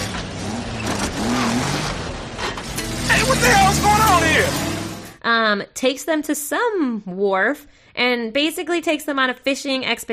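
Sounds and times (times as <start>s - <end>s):
facility bus engine revving loudly: 0.0s - 5.2s
speech: 3.4s - 4.6s, 5.2s - 10.1s.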